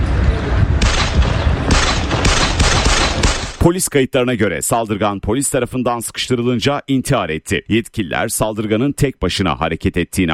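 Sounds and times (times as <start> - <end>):
gunshots from a shooting attack on security and police body cameras: 0.1 - 3.7
speech: 3.6 - 10.3.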